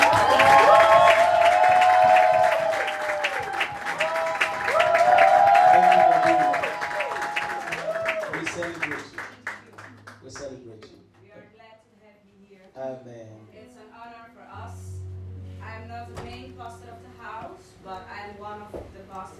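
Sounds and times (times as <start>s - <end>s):
cheers: 0.0s - 9.0s
large audience clapping: 0.0s - 10.7s.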